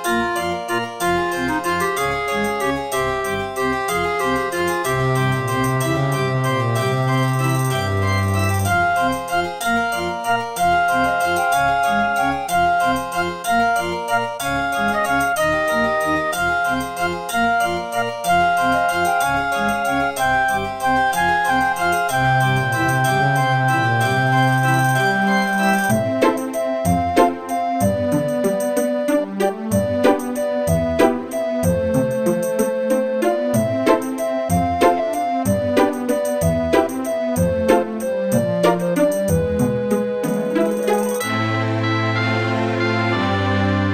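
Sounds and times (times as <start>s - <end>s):
Roland SCC-1 sound module music: 0.1s - 43.9s.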